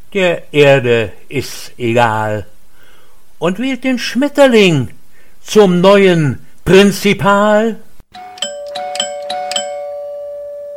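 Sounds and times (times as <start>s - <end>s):
speech: 0.1s - 2.5s, 3.4s - 7.8s
doorbell chimes: 8.2s - 10.7s.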